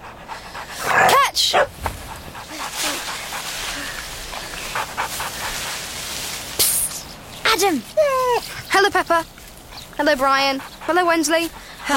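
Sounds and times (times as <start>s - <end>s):
dog panting while playing fetch: 0.0s - 6.0s, 9.7s - 11.9s
speech: 1.4s - 1.7s, 7.6s - 9.4s, 10.0s - 11.9s.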